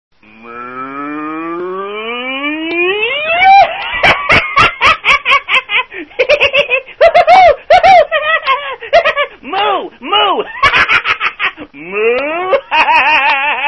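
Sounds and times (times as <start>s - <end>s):
cow: 0.2s - 2.3s
laughter: 3.2s - 9.4s, 10.4s - 13.6s.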